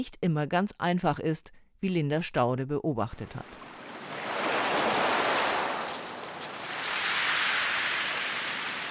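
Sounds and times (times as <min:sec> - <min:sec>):
speech: 0:00.0 - 0:03.7
ocean waves breaking on a beach: 0:03.4 - 0:08.8
wind: 0:03.4 - 0:08.8.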